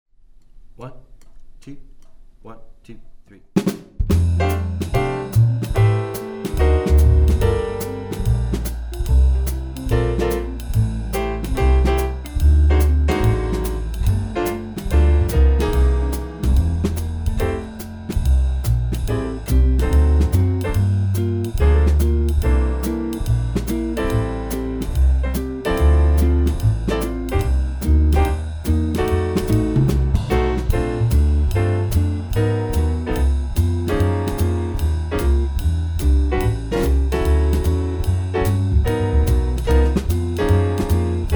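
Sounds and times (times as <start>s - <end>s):
swing rhythm section playing an etude: 3.6s - 41.3s.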